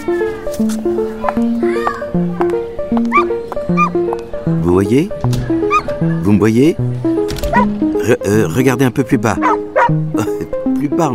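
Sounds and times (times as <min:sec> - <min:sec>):
light bouncy melody of stepping tones: 0:00.0 - 0:11.1
speech: 0:00.1 - 0:01.5, 0:04.8 - 0:05.3, 0:06.0 - 0:11.1
small dog yapping in high yips: 0:03.1 - 0:03.9
laughter: 0:10.1 - 0:10.6.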